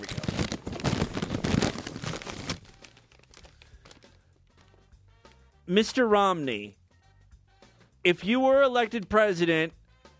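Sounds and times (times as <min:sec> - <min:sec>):
paper sheets rustling and crinkling while being shuffled: 0:00.0 - 0:04.8
speech: 0:05.7 - 0:06.8, 0:08.0 - 0:09.8.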